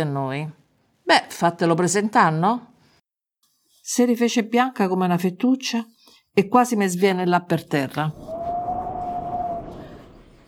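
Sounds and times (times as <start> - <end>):
speech: 0.0 - 2.7, 3.9 - 8.4
wind howling in the evening: 8.1 - 10.4.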